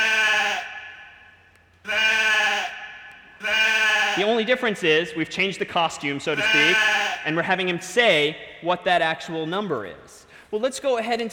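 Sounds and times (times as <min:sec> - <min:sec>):
sheep bleating: 0:00.0 - 0:01.2, 0:01.8 - 0:04.4, 0:06.3 - 0:07.4
speech: 0:04.2 - 0:11.3.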